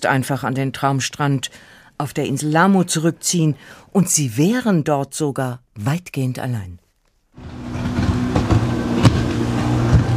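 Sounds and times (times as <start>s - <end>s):
speech: 0.0s - 6.8s
boat hull slapping waves: 7.4s - 10.1s
broadband water noise: 7.4s - 10.1s
motorboat engine droning: 7.4s - 10.1s.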